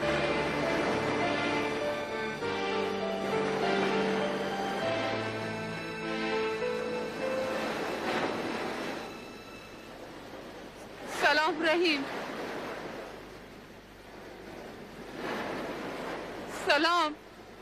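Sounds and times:
low tonal hum: 0:00.0 - 0:11.6
sea waves washing onto a beach: 0:00.0 - 0:17.6
speech: 0:11.4 - 0:12.2, 0:16.8 - 0:17.2.

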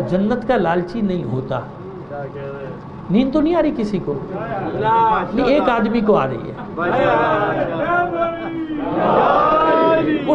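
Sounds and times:
speech: 0:00.1 - 0:10.3
large crowd at a speech shouting a religious slogan in unison: 0:06.9 - 0:10.3.

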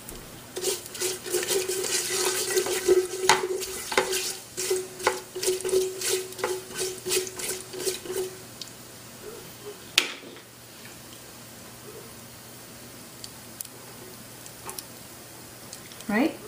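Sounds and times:
cumin seeds frying and sizzling in a pan: 0:00.6 - 0:08.9.

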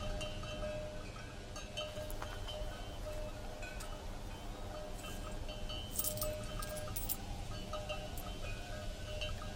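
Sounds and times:
steady low hum: 0:00.0 - 0:09.5
coins clinking as they are counted: 0:05.9 - 0:07.3.

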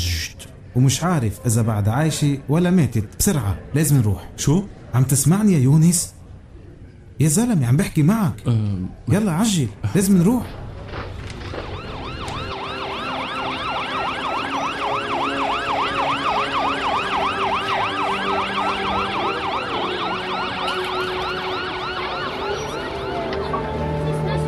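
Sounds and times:
speech: 0:00.7 - 0:06.2, 0:07.2 - 0:10.6
ambulance siren wailing at an accident scene: 0:11.4 - 0:24.4.

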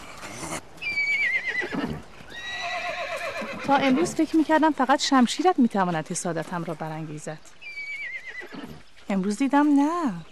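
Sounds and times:
colt neighing: 0:00.2 - 0:04.2, 0:07.6 - 0:08.9
speech: 0:03.7 - 0:07.6, 0:09.1 - 0:10.3.

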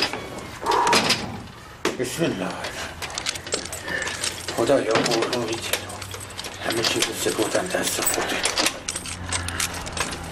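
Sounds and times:
low constant hum: 0:00.0 - 0:10.3
speech: 0:02.0 - 0:02.8, 0:04.6 - 0:05.8, 0:06.6 - 0:08.7
keys jangling: 0:03.0 - 0:10.3.

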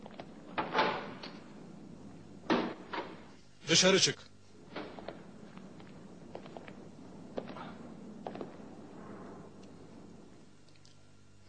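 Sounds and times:
door opened by guards with a scraping grinding sweep: 0:00.0 - 0:03.4, 0:04.5 - 0:10.6
speech: 0:03.7 - 0:04.3.

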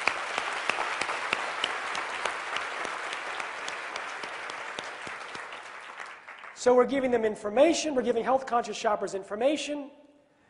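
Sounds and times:
room full of people applauding: 0:00.0 - 0:06.6
speech: 0:06.6 - 0:10.0.

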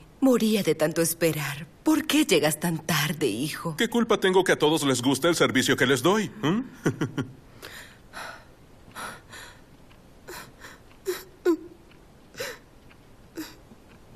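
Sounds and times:
speech: 0:00.2 - 0:07.5
woman crying softly with gasping breaths and whimpers: 0:10.3 - 0:11.8, 0:13.3 - 0:13.6.

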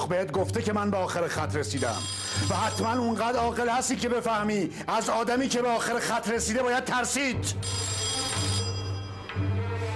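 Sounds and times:
speech: 0:00.0 - 0:08.0
telephone ringing with a buzzy electronic tone: 0:01.8 - 0:03.8, 0:07.4 - 0:09.4.

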